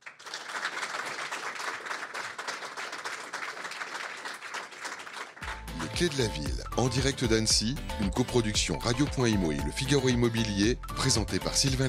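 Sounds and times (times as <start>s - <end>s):
audience applause: 0.0s - 6.4s
speech: 6.0s - 11.8s.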